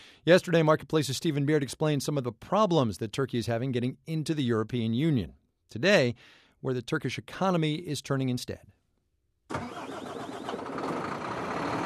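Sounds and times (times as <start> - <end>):
speech: 0.2 - 8.8
big diesel engine roaring at a truck depot: 9.5 - 11.8.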